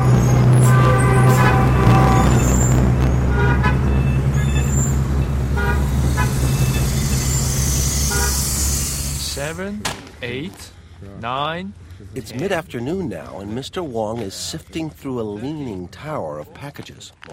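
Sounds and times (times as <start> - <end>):
short bright car horn toots in Beijing traffic: 0.0 - 8.8
dense city street traffic roar in modern Beijing: 0.0 - 15.0
speech: 9.6 - 17.3.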